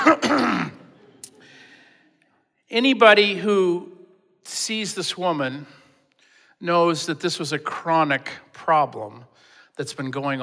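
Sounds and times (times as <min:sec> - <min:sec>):
speech: 0:00.0 - 0:00.8, 0:02.7 - 0:05.8, 0:06.6 - 0:10.4
person giving a pointed rasping cough: 0:00.0 - 0:00.9.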